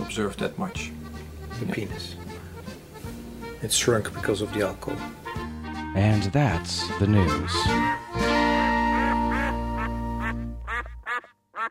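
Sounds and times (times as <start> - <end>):
speech: 0.2 - 1.0, 1.6 - 2.3, 3.6 - 5.2, 6.0 - 8.3
duck quacking: 6.8 - 8.0, 8.6 - 11.6.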